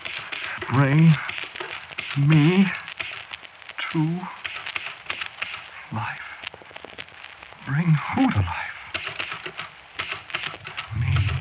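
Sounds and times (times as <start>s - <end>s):
typewriter keys clacking: 0.0s - 3.2s, 4.4s - 5.6s, 8.9s - 11.4s
speech: 0.7s - 1.4s, 2.2s - 2.8s, 3.9s - 4.4s, 5.9s - 6.2s, 7.6s - 8.6s
low rumble: 10.9s - 11.4s.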